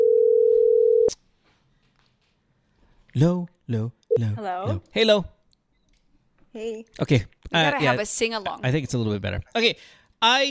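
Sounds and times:
telephone dial tone: 0.0 - 1.1
speech: 3.2 - 5.4, 6.6 - 10.4.

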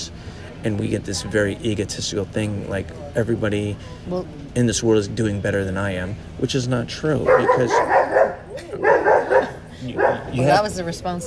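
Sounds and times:
speech: 0.6 - 11.2
dog barking: 7.2 - 10.6.

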